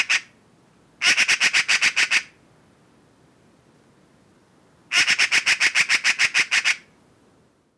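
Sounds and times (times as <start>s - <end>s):
Eurasian magpie Pica pica giving harsh rattling chatter: 1.0s - 2.3s, 4.9s - 6.9s.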